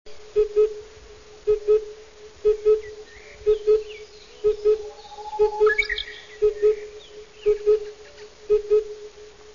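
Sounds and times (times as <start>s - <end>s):
oriental cuckoo Cuculus saturatus: 1.8s - 9.3s.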